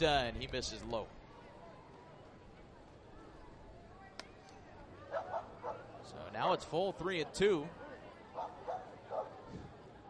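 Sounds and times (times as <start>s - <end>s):
speech: 0.0s - 1.2s, 6.1s - 7.8s
murmur of voices: 0.0s - 10.0s
dog barking: 5.1s - 5.8s, 8.4s - 9.4s.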